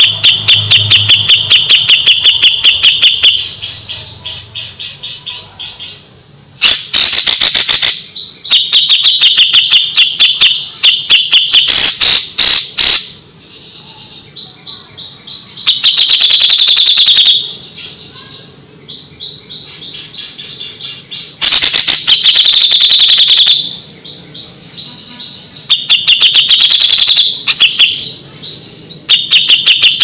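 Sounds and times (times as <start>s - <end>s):
grey-cheeked bulbul song: 0.0s - 30.0s.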